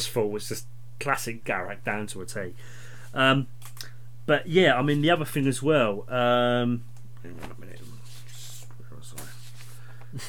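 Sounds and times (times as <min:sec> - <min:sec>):
speech: 0:00.0 - 0:07.9
steady low electrical hum: 0:00.0 - 0:10.2
rustling paper notes being shuffled: 0:07.4 - 0:10.0.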